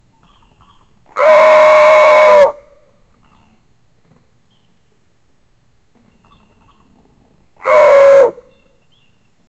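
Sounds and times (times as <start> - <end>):
deer bellowing loudly: 1.2 - 2.6, 7.6 - 8.4.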